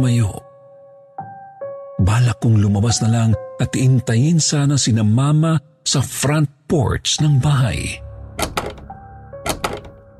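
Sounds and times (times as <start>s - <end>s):
speech: 0.0s - 0.4s, 2.0s - 8.0s
door knob turning on locked door: 8.4s - 10.1s.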